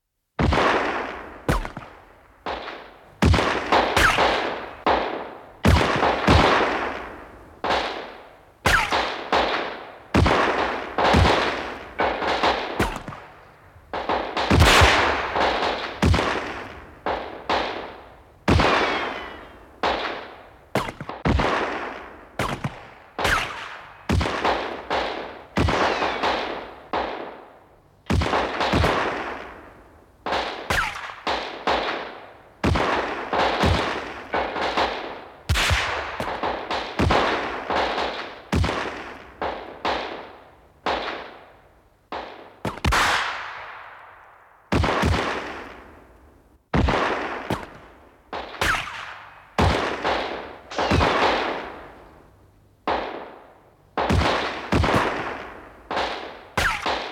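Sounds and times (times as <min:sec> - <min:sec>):
gunfight: 0:00.4 - 0:27.5, 0:28.1 - 0:41.5, 0:42.1 - 0:44.0, 0:44.7 - 0:46.1, 0:46.7 - 0:52.2, 0:52.8 - 0:57.0.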